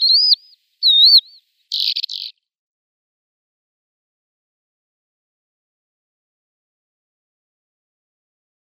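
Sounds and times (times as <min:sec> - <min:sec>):
Lesser short-toed lark song with slurred whistles and buzzy burst: 0:00.0 - 0:02.4.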